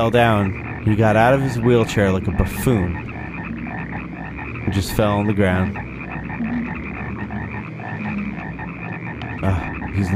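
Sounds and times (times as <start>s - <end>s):
speech: 0.0s - 3.1s, 4.7s - 5.9s, 9.4s - 10.1s
chorus of many frogs croaking: 0.0s - 10.1s.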